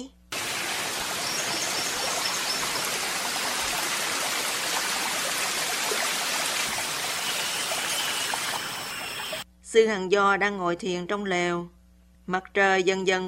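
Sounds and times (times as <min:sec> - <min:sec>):
babbling stream with rushing and trickling water: 0:00.4 - 0:09.4
speech: 0:09.7 - 0:13.2.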